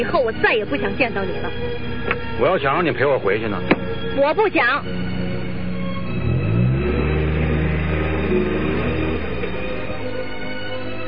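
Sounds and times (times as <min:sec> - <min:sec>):
speech: 0:00.0 - 0:05.0
car engine revving and driving away: 0:03.6 - 0:11.0.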